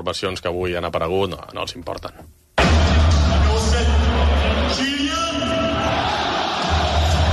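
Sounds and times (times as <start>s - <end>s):
speech: 0.0s - 2.4s
packed stadium crowd in Paris applauding and cheering at a lineup announcement: 2.6s - 7.3s.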